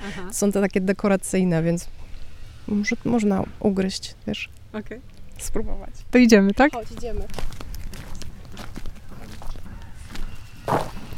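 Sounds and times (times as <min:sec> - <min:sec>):
speech: 0:00.0 - 0:02.1, 0:02.7 - 0:07.6, 0:10.7 - 0:11.0
footsteps walking through dense brush and thickets: 0:06.8 - 0:11.1.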